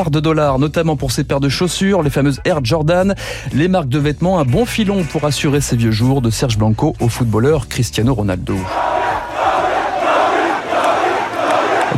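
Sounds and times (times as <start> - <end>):
speech: 0.0 - 9.0
large crowd of frenzied supporters roaring and cheering a new president: 8.5 - 11.9.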